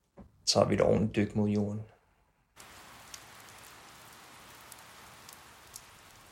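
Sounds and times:
speech: 0.5s - 1.9s
heavy rain pouring down: 2.6s - 6.3s
sharper drips or spatters: 2.6s - 6.3s.

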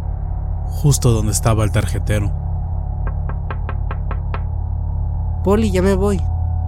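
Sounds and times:
steady low hum: 0.0s - 6.6s
speech: 0.7s - 2.5s, 5.4s - 6.3s
knuckle raps on an office window: 3.0s - 4.5s.

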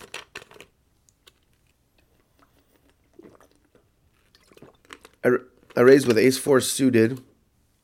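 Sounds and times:
person sipping water: 2.0s - 5.8s
wet slurps and gulps: 2.0s - 5.8s
speech: 5.2s - 7.3s.

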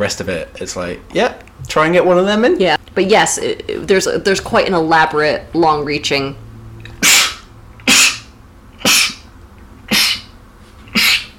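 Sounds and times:
speech: 0.0s - 6.4s
person sneezing: 7.0s - 9.3s, 9.9s - 11.3s.

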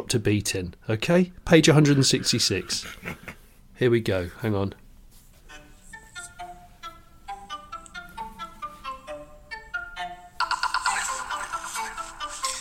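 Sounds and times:
speech: 0.1s - 4.8s
telephone ringtone with bright melodic pattern of quick repeated notes: 5.5s - 12.5s.

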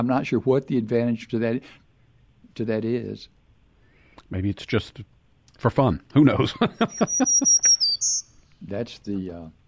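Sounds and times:
speech: 0.0s - 1.8s, 2.6s - 3.4s, 4.2s - 9.6s
laughter: 6.4s - 7.8s
black-throated green warbler singing: 6.8s - 8.4s.

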